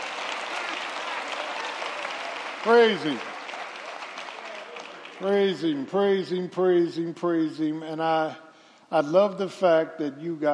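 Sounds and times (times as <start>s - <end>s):
crowd hand clapping: 0.0s - 6.2s
speech: 2.6s - 3.3s, 5.2s - 10.5s.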